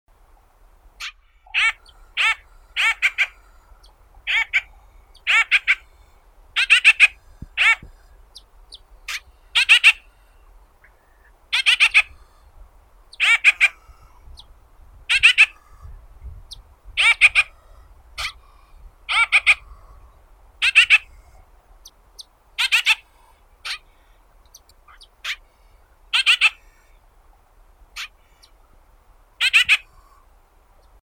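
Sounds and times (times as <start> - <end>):
grosbeak Mycerobas carnipes: 1.0 - 12.5, 13.1 - 14.5, 15.1 - 27.0, 28.0 - 28.6, 29.4 - 31.0.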